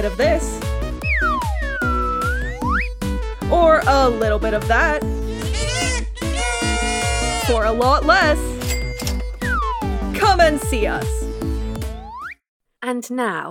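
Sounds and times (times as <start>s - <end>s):
speech: 0.0s - 0.6s, 3.5s - 5.2s, 7.5s - 8.5s, 10.2s - 11.2s, 12.8s - 13.5s
bouncy plucky music track with percussive hits: 0.0s - 12.3s
slide whistle swooping: 1.0s - 3.0s, 6.2s - 7.5s
kazoo buzzing short melodic notes: 5.2s - 7.8s.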